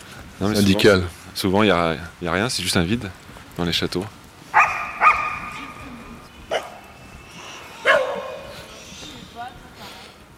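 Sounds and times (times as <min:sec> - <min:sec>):
speech: 0:00.4 - 0:04.2
dogs barking: 0:04.5 - 0:05.9, 0:06.5 - 0:08.8.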